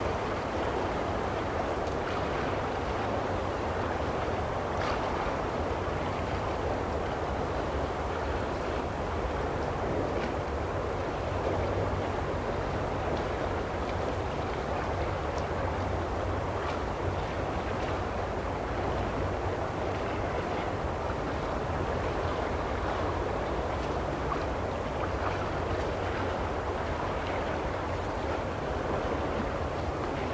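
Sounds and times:
sea: 0.0 - 30.3.

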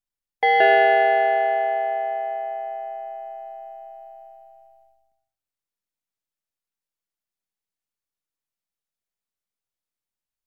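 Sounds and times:
ding-dong chime: 0.4 - 4.8.

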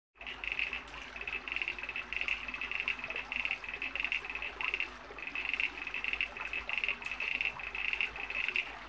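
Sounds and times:
crickets chirping in a field: 0.2 - 8.8.

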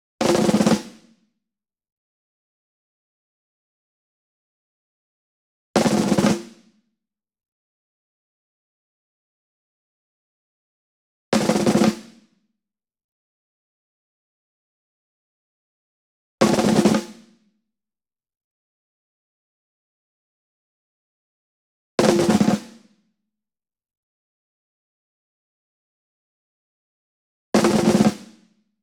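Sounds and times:
ensemble snare drum group roll near: 0.2 - 1.0, 5.8 - 6.6, 11.4 - 12.2, 16.4 - 17.3, 22.0 - 22.8, 27.6 - 28.4.

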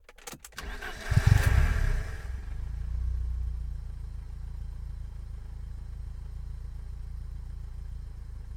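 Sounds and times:
engine starting: 0.2 - 2.4
engine idling: 0.6 - 8.5.

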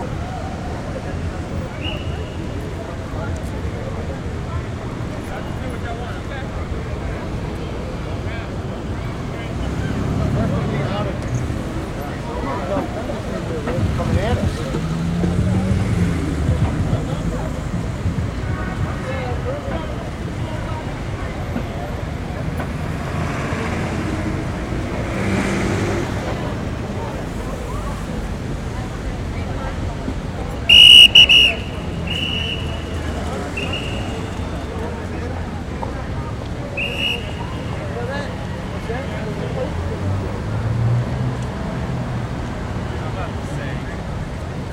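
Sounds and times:
people in the city: 0.0 - 44.7
street traffic: 0.0 - 44.7
bus whistle: 1.7 - 2.6, 30.7 - 34.7, 36.7 - 37.8.

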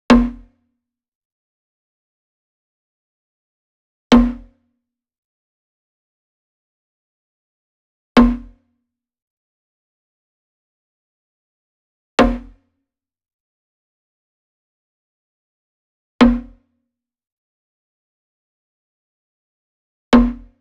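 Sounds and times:
wooden floor drum hit with a beater near: 0.1 - 0.5, 4.1 - 4.5, 8.2 - 8.6, 12.2 - 12.6, 16.2 - 16.6, 20.2 - 20.6.

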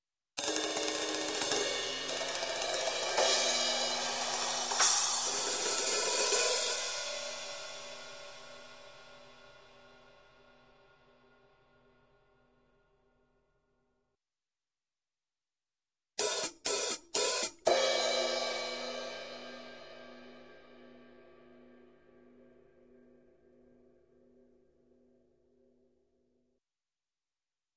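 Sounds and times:
cymbals: 0.4 - 10.4, 16.2 - 20.4
percussion: 0.4 - 10.4, 16.2 - 21.2.

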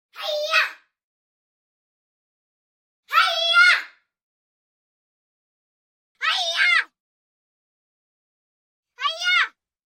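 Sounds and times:
girl yelling: 0.2 - 0.8, 3.1 - 4.0, 6.2 - 7.0, 9.0 - 9.6.

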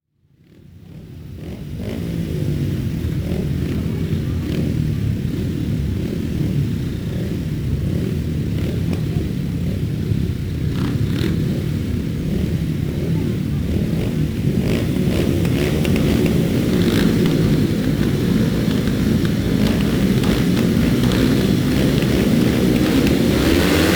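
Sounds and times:
motocross motorcycles: 0.1 - 23.9.

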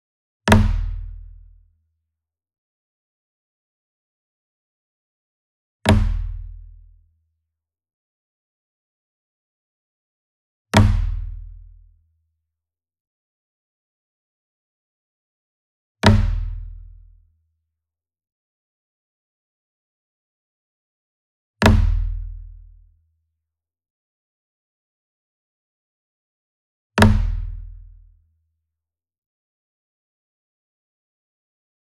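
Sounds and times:
single drum flam struck hard with hard beater: 0.5 - 1.1, 5.9 - 6.4, 10.8 - 11.4, 16.0 - 16.5, 21.6 - 22.1, 27.0 - 27.6.

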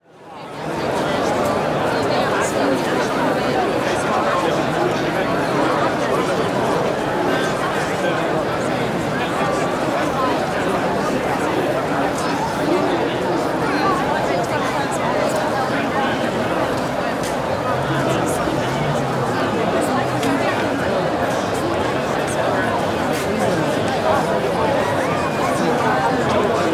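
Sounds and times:
busy dense outdoor crowd walla: 0.0 - 26.7.

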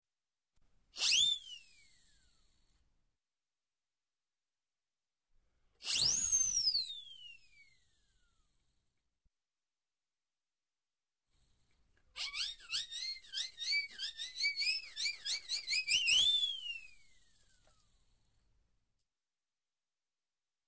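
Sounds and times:
comedy whistle: 1.0 - 1.9, 5.8 - 7.7, 12.2 - 17.1.

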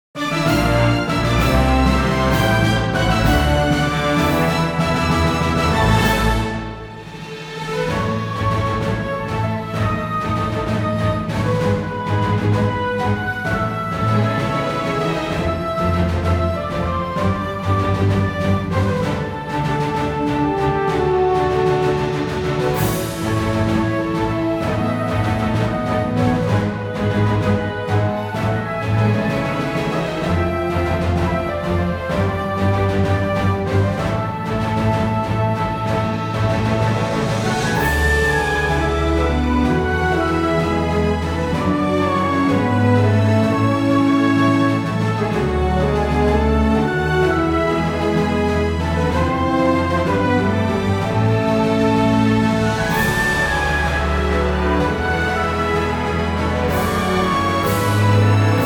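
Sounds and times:
victory fanfare: 0.2 - 58.6.

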